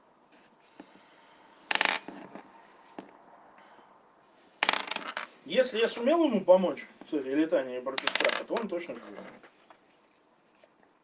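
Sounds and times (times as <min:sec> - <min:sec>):
dice clattering across a hard surface: 0:01.7 - 0:02.3, 0:04.6 - 0:05.4, 0:07.9 - 0:09.4
speech: 0:05.5 - 0:09.5.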